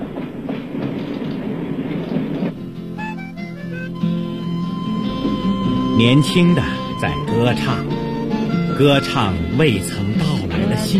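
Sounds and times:
train wheel clatter: 0.0 - 4.0
international passenger train rumbling on rails near Basel: 0.0 - 10.9
clear tonal notes: 3.0 - 10.9
speech: 6.0 - 8.0, 8.8 - 10.9.

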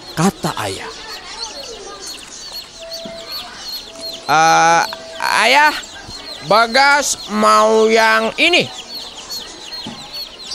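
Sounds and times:
chickens offered for sale chirping: 0.0 - 10.5
speech: 0.2 - 1.0, 4.3 - 8.8
loud sustained harmonic chicken squawk: 1.0 - 7.3.

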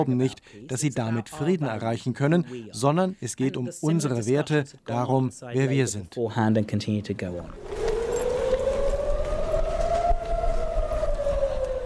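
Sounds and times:
speech: 0.0 - 7.9
air raid warning sirens wailing in Israel: 7.6 - 11.8.

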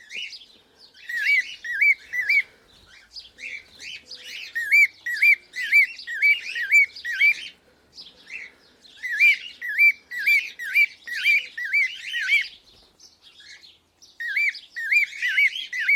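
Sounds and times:
pearl cockatiel chirping: 1.0 - 7.6, 8.3 - 12.6, 14.2 - 15.9.

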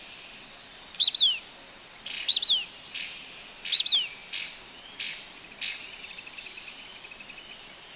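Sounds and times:
insect hiss: 0.0 - 7.9
blackish pewee Contopus nigrescens nigrescens calls: 0.9 - 1.4, 2.1 - 3.0, 3.6 - 5.8.

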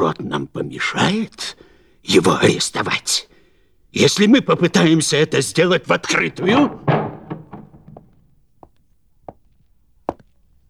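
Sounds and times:
speech: 0.0 - 3.3, 3.9 - 7.0
knocking on a door: 6.1 - 8.2.

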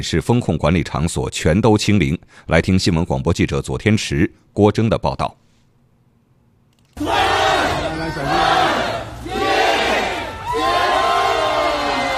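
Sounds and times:
speech: 0.0 - 5.4
crowd of residents cheering and chanting a countdown in heavy rain: 7.0 - 12.1.

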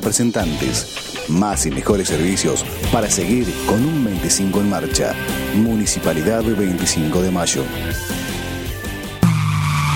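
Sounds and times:
speech: 0.1 - 8.4
car braking hard with tires skidding: 9.2 - 9.9
low car engine hum: 9.2 - 9.9.

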